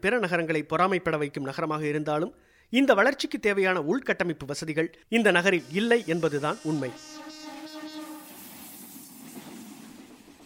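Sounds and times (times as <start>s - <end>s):
speech: 0.0s - 7.2s
electric suburban train horn in Chennai, India: 5.5s - 8.5s
electric suburban train rumbling past in Chennai, India: 8.3s - 10.4s.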